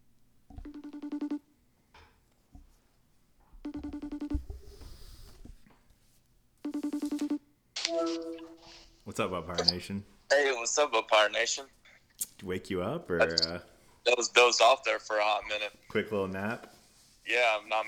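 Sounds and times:
ringback tones from an outgoing phone call: 0.6 - 1.4, 3.6 - 4.6, 6.6 - 8.8
speech: 9.2 - 11.8, 12.4 - 16.7, 17.3 - 17.8.

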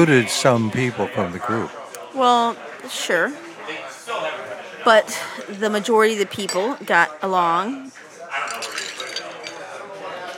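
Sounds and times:
speech: 0.0 - 8.0
ice clinking against a beer glass: 8.3 - 10.3
water pouring into a beer glass: 8.4 - 10.3.

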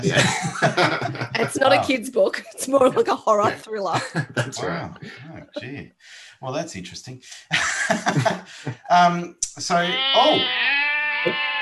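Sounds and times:
laughter: 0.0 - 5.8, 7.4 - 9.2
speech: 0.0 - 11.5
short voiced sounds: 1.3 - 1.9, 4.3 - 5.8, 9.7 - 11.5
goat bleating: 9.8 - 11.5.

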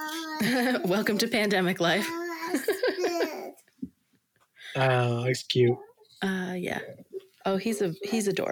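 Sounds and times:
baby whining: 0.0 - 0.8, 2.0 - 3.6
speech: 0.4 - 3.6, 4.7 - 8.5.

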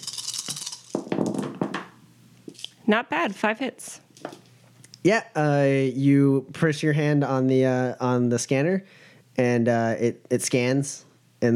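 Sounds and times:
handful of dice clattering across a hard surface: 0.0 - 2.6
speech: 2.9 - 4.0, 5.0 - 11.5.

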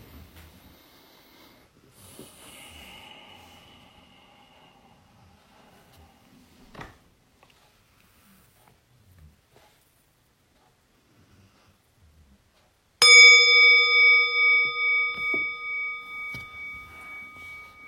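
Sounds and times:
meditation bell ringing: 13.0 - 17.8.

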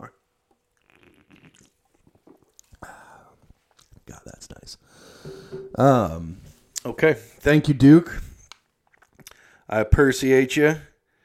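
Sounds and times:
sipping a sparkling grapefruit drink: 0.7 - 4.0
speech: 4.1 - 8.2, 9.7 - 10.9.

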